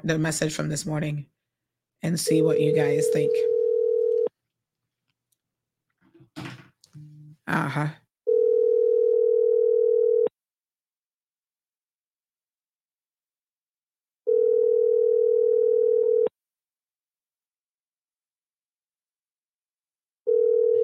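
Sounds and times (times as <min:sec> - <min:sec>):
speech: 0:00.0 - 0:01.4, 0:02.0 - 0:03.5, 0:07.5 - 0:08.0
phone ringback tone of an unanswered call to a house number: 0:02.5 - 0:04.3, 0:08.3 - 0:10.3, 0:14.3 - 0:16.3, 0:20.3 - 0:20.8.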